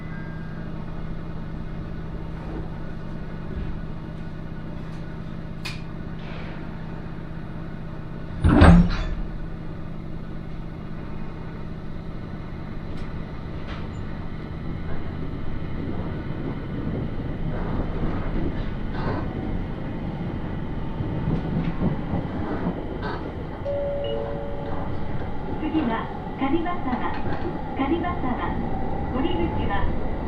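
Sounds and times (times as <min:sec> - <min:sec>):
local train on the Aoimori Railway rumbling on rails in Japan: 0:00.0 - 0:30.2
train rail squeals: 0:23.1 - 0:27.8
train tonal whines: 0:23.6 - 0:29.2.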